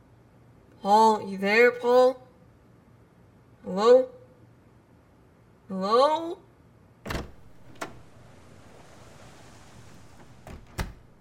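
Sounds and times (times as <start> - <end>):
speech: 0.8 - 2.2, 3.7 - 4.2, 5.7 - 6.4
door opening and closing: 7.0 - 11.1.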